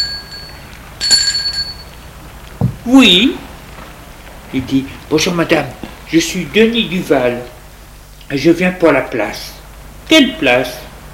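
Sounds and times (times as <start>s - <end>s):
doorbell ringing at a front door: 0.0s - 1.9s
speech: 2.9s - 3.4s, 4.5s - 7.5s, 8.3s - 11.1s.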